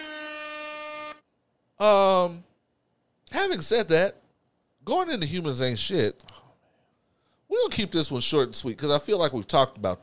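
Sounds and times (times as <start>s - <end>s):
air horn blasts: 0.0s - 1.3s
speech: 1.8s - 2.5s, 3.4s - 4.2s, 4.8s - 6.4s, 7.6s - 10.0s.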